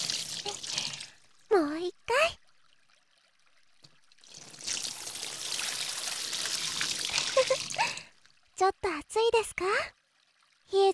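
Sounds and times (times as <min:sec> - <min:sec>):
hot water poured over a person's body to rinse it: 0:00.0 - 0:01.2, 0:04.1 - 0:08.4
speech: 0:08.8 - 0:10.0, 0:10.7 - 0:10.9.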